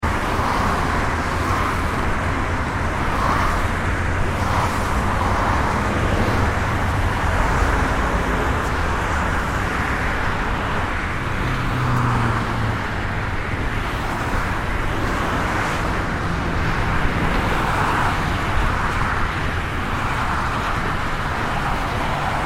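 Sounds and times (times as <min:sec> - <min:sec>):
cars and trucks passing at high speeds on a freeway: 0:00.0 - 0:22.4.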